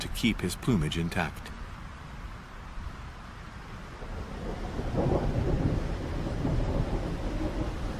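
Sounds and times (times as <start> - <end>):
blustery gusting wind: 0.0 - 7.9
steady rain: 0.0 - 7.9
speech: 0.2 - 1.5
deep roll of thunder rumbling: 3.9 - 7.9.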